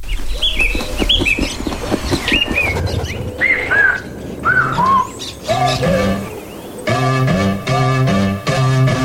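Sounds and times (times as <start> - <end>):
layered chirping birds: 0.0 - 9.0
loud instrumental arrangement with sustained chords and a steady pulse: 6.9 - 9.0.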